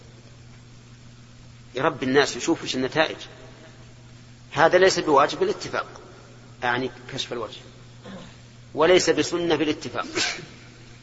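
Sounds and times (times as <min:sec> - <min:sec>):
low hum: 0:00.0 - 0:11.0
speech: 0:01.7 - 0:03.4, 0:04.6 - 0:06.0, 0:06.6 - 0:07.8, 0:08.7 - 0:10.6
sneeze: 0:10.0 - 0:10.6.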